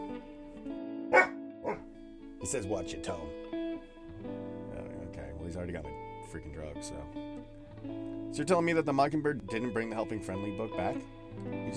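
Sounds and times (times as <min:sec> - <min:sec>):
narc dog barking: 0:01.1 - 0:01.9
speech: 0:02.4 - 0:03.5, 0:05.5 - 0:11.7.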